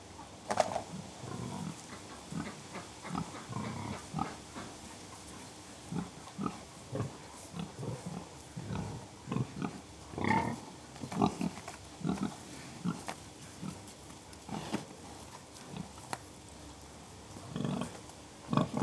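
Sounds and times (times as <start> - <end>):
pigs grunting: 0.6 - 4.8, 5.8 - 14.9, 17.3 - 18.8.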